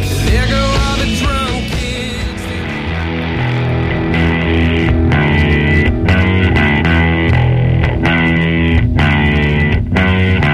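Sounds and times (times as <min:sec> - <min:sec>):
steady rock drum hits: 0:00.0 - 0:03.8
heavily distorted rock guitars holding sustained chords: 0:00.0 - 0:10.5.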